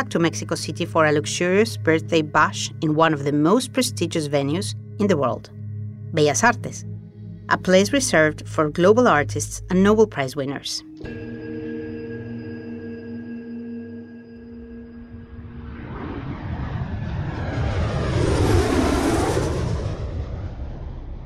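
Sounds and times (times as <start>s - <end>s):
speech: 0.0s - 6.9s, 7.5s - 11.4s
private jet plane landing: 11.2s - 21.2s.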